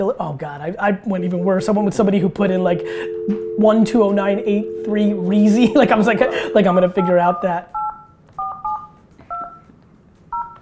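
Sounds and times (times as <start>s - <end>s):
speech: 0.0s - 7.8s
touch-tone telephone keypad beeps: 1.2s - 9.6s.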